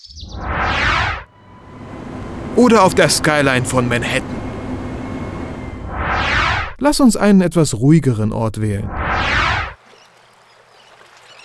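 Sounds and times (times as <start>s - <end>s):
ocean surf rushing around a lonely island: 0.8s - 6.8s
speech: 2.6s - 4.4s, 6.8s - 9.0s.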